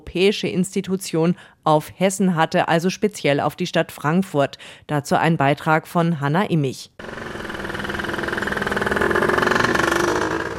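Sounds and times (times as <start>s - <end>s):
speech: 0.1s - 7.3s
morning motor traffic rumbling on a busy street in Frankfurt: 7.0s - 10.5s
trams rattling past on a Frankfurt street: 7.0s - 10.5s.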